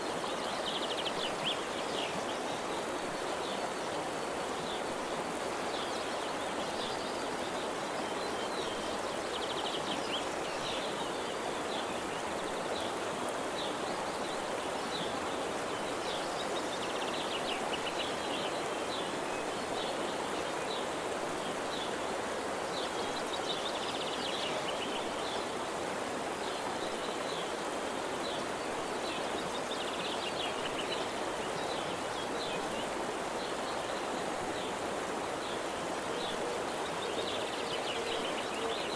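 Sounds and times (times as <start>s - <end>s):
steady hiss of rushing water: 0.0s - 38.9s.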